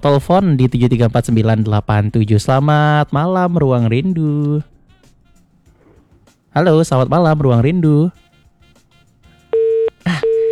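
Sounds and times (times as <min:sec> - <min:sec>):
speech: 0:00.0 - 0:04.7, 0:06.6 - 0:08.2
telephone busy tone after a call is cut off: 0:09.5 - 0:10.5.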